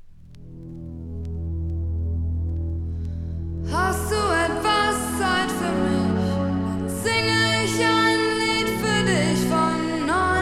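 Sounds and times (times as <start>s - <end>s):
faint ticking accents: 0.0s - 4.2s
deep sustained synth chord of a synth-pop song intro: 0.0s - 10.3s.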